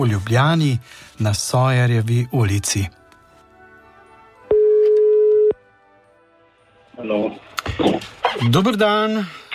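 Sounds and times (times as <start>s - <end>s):
speech: 0.0s - 3.0s, 7.0s - 9.4s
telephone ringing tone as a radio station calls a listener in Ljubljana: 4.5s - 5.6s.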